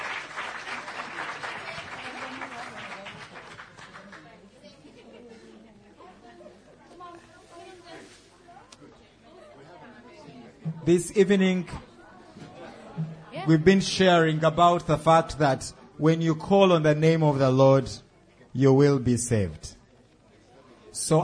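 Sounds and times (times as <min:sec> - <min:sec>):
audience applause: 0:00.0 - 0:04.4
crowd chatter and murmuring voices: 0:00.0 - 0:21.2
speech: 0:10.9 - 0:11.9, 0:13.5 - 0:18.0, 0:18.6 - 0:19.7, 0:21.1 - 0:21.2.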